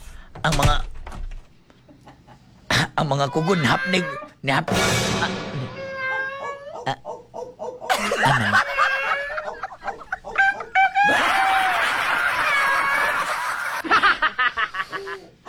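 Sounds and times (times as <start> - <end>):
speech: 0.5 - 0.9, 3.0 - 5.5
several turkeys gobbling and chattering: 6.4 - 11.6
laughter: 7.9 - 15.3.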